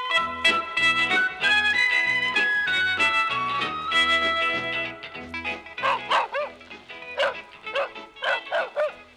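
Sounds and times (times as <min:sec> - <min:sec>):
sustained melodic music: 0:00.0 - 0:09.1
thirsty dog barking and yelping: 0:05.8 - 0:06.6, 0:07.2 - 0:09.1.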